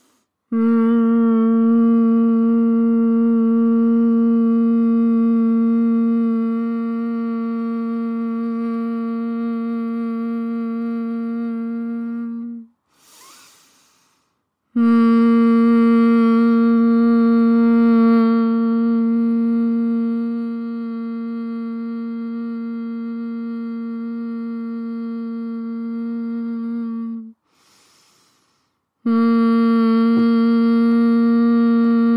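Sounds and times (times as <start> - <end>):
long breath in: 0.0 - 0.4, 12.8 - 14.5, 27.4 - 28.9
sustained low-pitched humming on exhale in a breathing exercise: 0.5 - 14.1, 14.8 - 27.4, 29.1 - 32.1.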